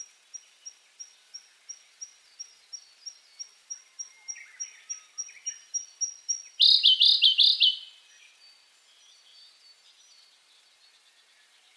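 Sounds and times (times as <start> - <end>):
Siberian blue robin chirping: 2.0 - 8.2.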